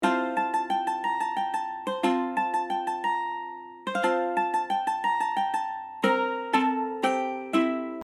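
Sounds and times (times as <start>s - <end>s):
medieval bard mandolin festive melody: 0.0s - 8.0s.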